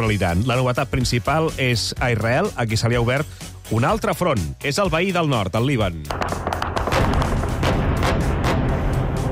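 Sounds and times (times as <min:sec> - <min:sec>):
speech: 0:00.1 - 0:06.4
gunfire at dawn in Beirut: 0:06.1 - 0:09.2.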